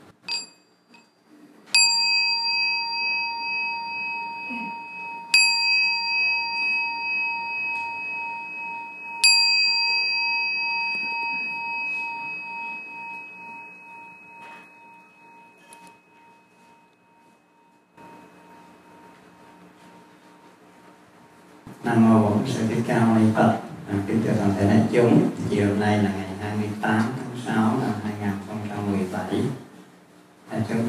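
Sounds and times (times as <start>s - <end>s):
meditation bell struck at a meditation retreat in Orange County California: 0.2s - 20.3s
speech: 21.9s - 29.5s.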